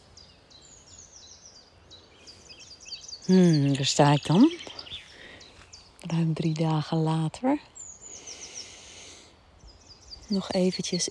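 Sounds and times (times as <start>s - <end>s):
quick high bird chirps: 0.0s - 11.1s
speech: 3.3s - 4.7s, 6.1s - 7.7s, 10.3s - 11.1s.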